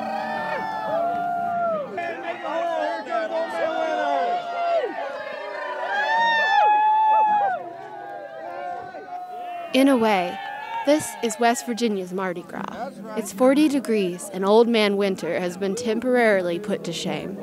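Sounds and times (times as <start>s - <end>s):
rising and falling howls and shouts: 0.0s - 11.9s
large crowd cheering and whooping at a midnight bonfire: 0.0s - 12.0s
speech: 9.8s - 17.4s.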